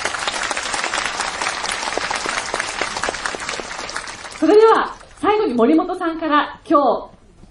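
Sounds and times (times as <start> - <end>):
sustained applause from a large audience: 0.0 - 5.8
speech: 4.4 - 7.1.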